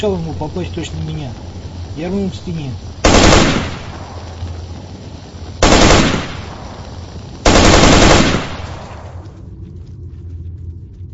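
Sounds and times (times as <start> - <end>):
speech: 0.0 - 3.6
automatic rifle bursts: 3.0 - 3.8, 5.6 - 6.4, 7.4 - 8.8.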